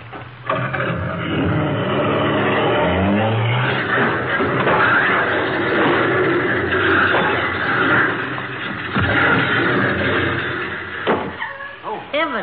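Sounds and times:
car with a sticking accelerator revving: 0.5s - 11.2s
car crashing through a garage back wall, splintering wood and debris: 2.1s - 11.4s.

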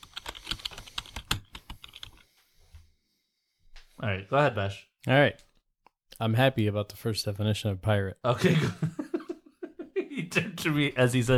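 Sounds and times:
rapid computer keyboard typing: 0.0s - 2.2s
speech: 4.0s - 5.5s, 6.2s - 9.0s, 10.6s - 11.3s
laughter: 8.3s - 10.6s.

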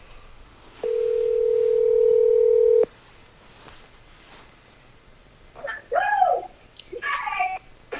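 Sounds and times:
steady telephone tone: 0.8s - 2.9s.

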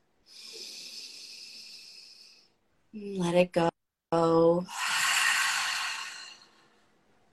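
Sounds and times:
deep inhale through the nose during a guided belly-breathing exercise: 0.3s - 2.6s, 4.7s - 6.8s
speech: 2.9s - 4.8s.

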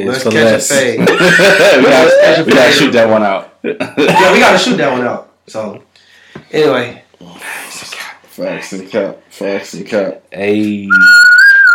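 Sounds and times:
speech: 0.0s - 5.9s, 6.5s - 11.3s
laughter: 1.0s - 2.9s
person whistling a brief clear high note: 10.9s - 11.7s.

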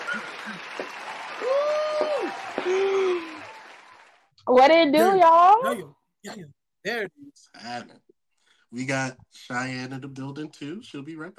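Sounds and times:
whooping cheers: 0.0s - 4.2s
crowd applause: 0.0s - 4.3s
speech: 4.5s - 8.0s, 8.7s - 11.3s.

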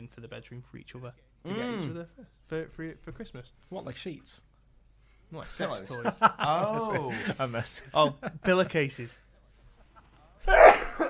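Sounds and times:
speech: 0.1s - 4.5s, 5.3s - 9.2s
person sneezing: 10.4s - 11.0s.

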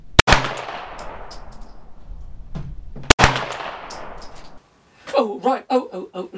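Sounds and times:
Glock pistol gunshots: 0.2s - 1.5s, 3.1s - 4.5s
speech: 5.2s - 6.3s.

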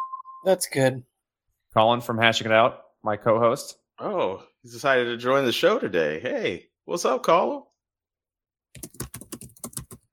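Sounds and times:
speech: 0.4s - 1.1s, 1.7s - 7.7s
typing on a computer keyboard: 8.7s - 10.1s.

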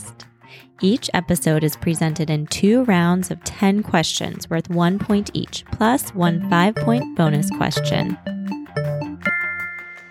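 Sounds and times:
speech: 0.8s - 8.4s
electronic chime of three rising tones: 6.4s - 10.0s.

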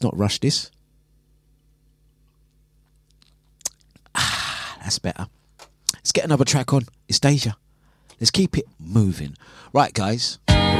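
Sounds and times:
speech: 0.0s - 0.8s, 4.9s - 5.4s, 6.0s - 7.6s, 8.2s - 10.7s
low steady hum: 0.0s - 10.7s
sipping a drink with a sharp slurp: 2.2s - 4.2s.

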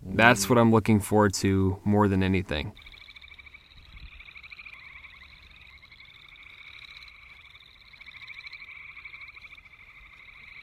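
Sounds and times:
faint low rumble: 0.0s - 2.8s
speech: 0.2s - 2.8s
spring chorus of calling frogs trilling: 2.7s - 10.6s.

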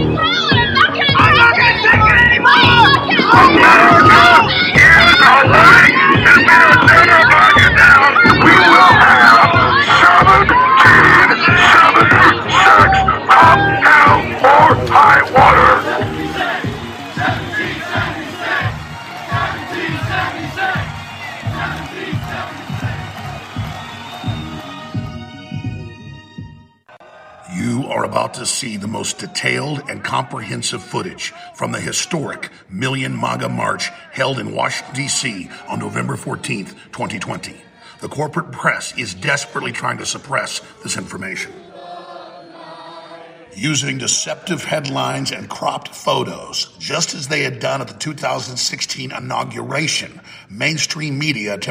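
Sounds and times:
large crowd yelling out of windows: 0.0s - 25.4s, 26.9s - 38.2s, 39.0s - 43.8s
steady rhythmic thumping: 0.5s - 26.6s
speech: 28.6s - 41.7s, 43.6s - 51.6s.

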